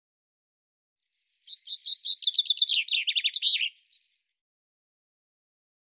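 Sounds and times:
common chaffinch singing: 1.4s - 4.1s.

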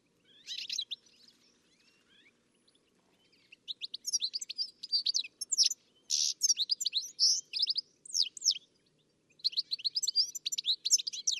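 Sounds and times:
bird chirping: 0.0s - 11.3s.

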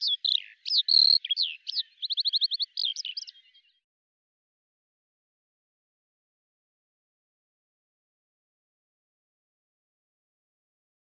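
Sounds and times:
bird singing: 0.0s - 3.8s.

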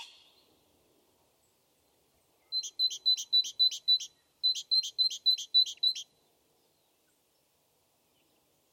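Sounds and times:
great tit singing two-note phrase: 2.3s - 6.2s.

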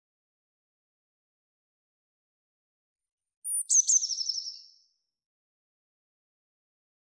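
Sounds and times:
Eurasian blue tit whistle and trill: 3.5s - 4.8s.

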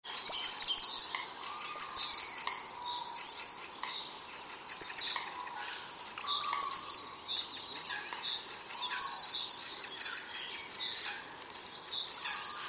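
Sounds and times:
bird calling in bursts of downslurred whistled chirps: 0.1s - 12.6s.

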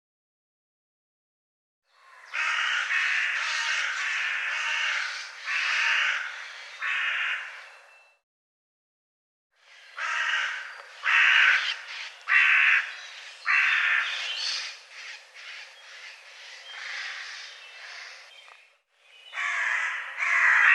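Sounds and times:
bird cawing: 1.9s - 7.8s, 9.7s - 18.4s, 19.3s - 20.7s.

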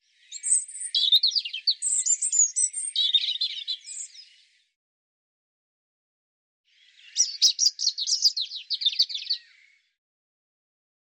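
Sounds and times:
European robin singing: 0.1s - 4.6s, 6.7s - 9.9s.

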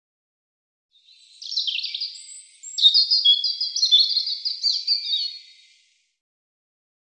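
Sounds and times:
European robin singing: 1.0s - 6.0s.

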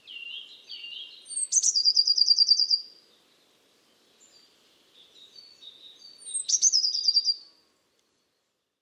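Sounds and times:
Eurasian blue tit calling with slurred notes and rattling trill: 0.2s - 2.8s, 5.4s - 7.4s.

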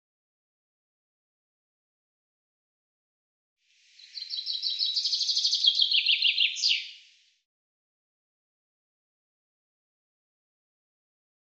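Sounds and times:
common chaffinch singing: 4.0s - 7.2s.

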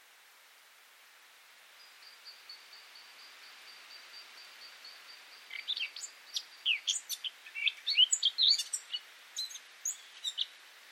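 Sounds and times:
faint background hiss: 0.0s - 10.8s
Eurasian blackcap song with chattering and warbling notes: 5.4s - 10.5s.

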